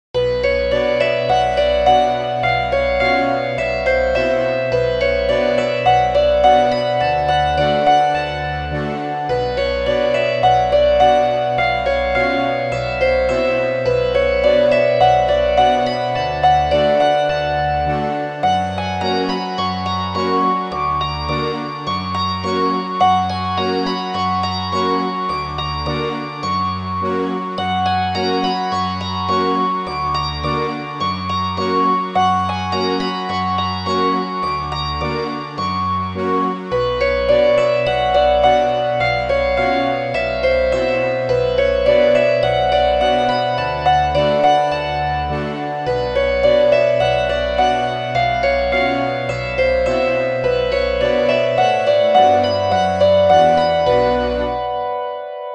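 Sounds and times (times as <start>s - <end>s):
hammered dulcimer: 0.2s - 55.5s.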